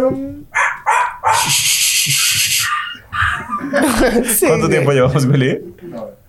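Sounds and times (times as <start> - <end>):
speech: 0.0 - 0.7, 1.4 - 3.0, 3.7 - 6.2
person imitating dog barking and howling yelp: 0.5 - 4.0
laughter: 3.1 - 5.6.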